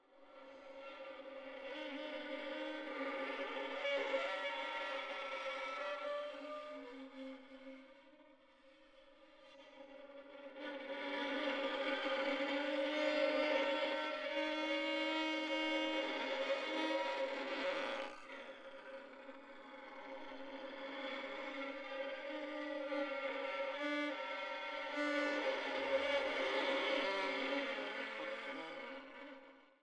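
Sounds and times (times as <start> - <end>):
violin: 0.0 - 29.8.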